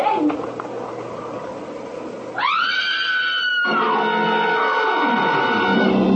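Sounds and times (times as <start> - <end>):
woman in a barn letting out a long loud high-pitched scream: 2.4 - 5.9.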